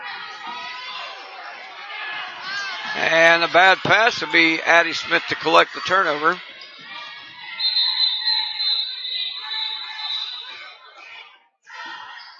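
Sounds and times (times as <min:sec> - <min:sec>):
speech: 0:02.9 - 0:06.5
referee's whistle at a women's basketball game: 0:07.6 - 0:10.8.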